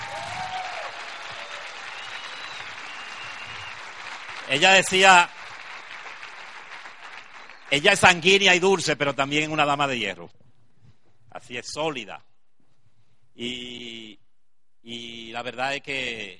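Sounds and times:
audience applauding: 0:00.0 - 0:08.7
speech: 0:04.5 - 0:05.4, 0:07.7 - 0:10.4, 0:11.4 - 0:12.3, 0:13.4 - 0:14.2, 0:14.8 - 0:16.3.

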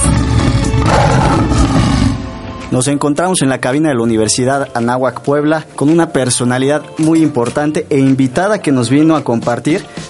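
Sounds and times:
lion letting out a loud deep rumbling roar: 0:00.0 - 0:02.5
speech: 0:02.7 - 0:10.0.

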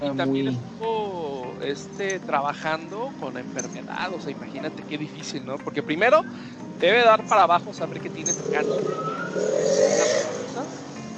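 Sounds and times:
speech: 0:00.0 - 0:00.9, 0:01.6 - 0:09.9
motorcycle tires squealing: 0:08.2 - 0:10.9
motorcycle engine whine passing by: 0:08.3 - 0:10.8.

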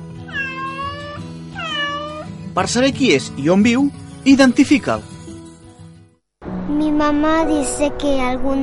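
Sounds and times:
cat meowing: 0:00.3 - 0:02.3
speech: 0:02.5 - 0:05.1, 0:07.0 - 0:08.6.

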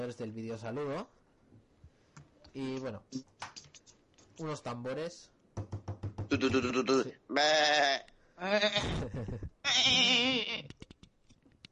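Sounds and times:
speech: 0:00.0 - 0:01.6, 0:02.6 - 0:03.6, 0:04.4 - 0:10.7
goat bleating loudly: 0:06.3 - 0:09.0, 0:09.6 - 0:10.7
laughter: 0:08.8 - 0:09.6.

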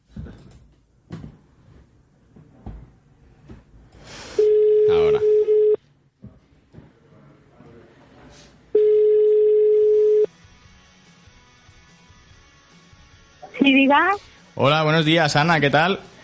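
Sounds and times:
outgoing telephone call tone calling a mobile phone: 0:04.4 - 0:05.8, 0:08.8 - 0:10.3
speech: 0:13.9 - 0:16.1.

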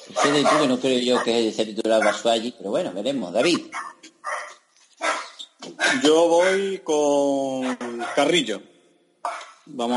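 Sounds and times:
dog barking: 0:00.0 - 0:02.3, 0:03.7 - 0:06.6, 0:07.6 - 0:08.4, 0:09.2 - 0:09.7
speech: 0:00.1 - 0:04.4, 0:05.9 - 0:08.7, 0:09.7 - 0:09.9.

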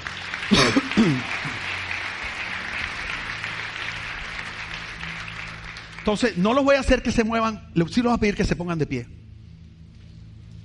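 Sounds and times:
audience applause: 0:00.0 - 0:06.6
speech: 0:06.1 - 0:09.2.

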